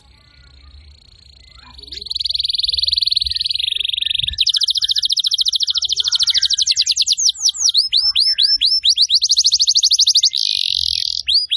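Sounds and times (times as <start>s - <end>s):
Atlantic canary energetic song with trills and descending whistled sweeps: 0.0s - 11.5s.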